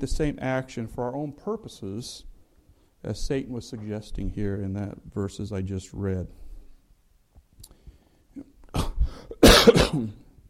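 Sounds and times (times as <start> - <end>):
speech: 0.0 - 2.3, 3.0 - 6.4, 9.6 - 10.2
harsh coughs from a person with a medication side-effect cough: 8.7 - 10.3.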